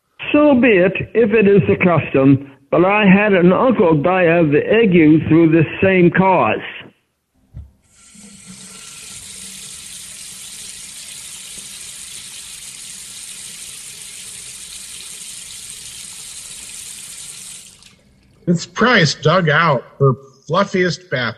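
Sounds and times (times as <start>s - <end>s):
speech: 0.3s - 6.8s, 18.5s - 21.3s
water gushing from bath taps into a bath: 7.9s - 18.5s.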